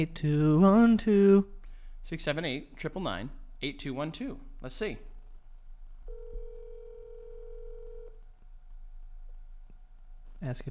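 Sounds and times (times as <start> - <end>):
speech: 0.0 - 5.1, 10.4 - 10.6
low phone line hiss: 0.0 - 10.6
phone line ringing tone: 6.1 - 8.2.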